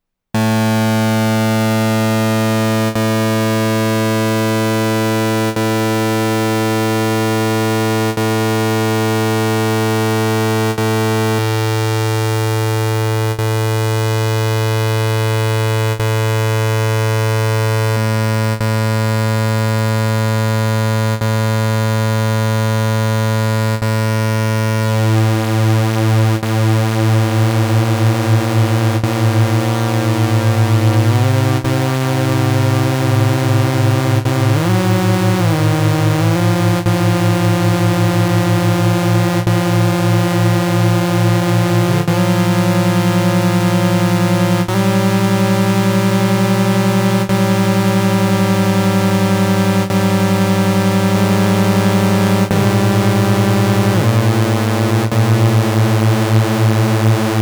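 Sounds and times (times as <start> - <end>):
Korg Volca Bass three-voice detuned square wave bass synth: 0.4 - 57.4.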